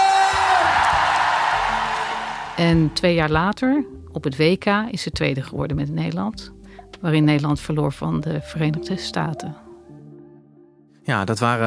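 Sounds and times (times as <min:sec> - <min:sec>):
scattered shouts: 0:00.0 - 0:02.6
large crowd cheering and whooping: 0:00.0 - 0:03.0
speech: 0:02.6 - 0:09.6, 0:11.1 - 0:11.6.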